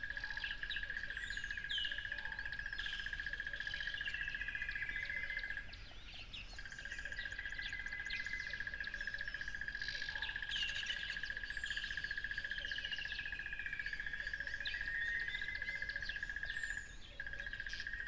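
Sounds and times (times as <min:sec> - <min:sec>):
cricket chorus by a lively tropical river: 0:00.0 - 0:18.0.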